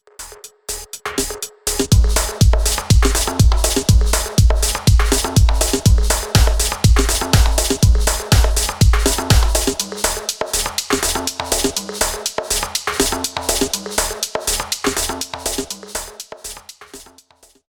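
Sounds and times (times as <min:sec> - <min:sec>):
dance percussion: 0:00.0 - 0:17.6.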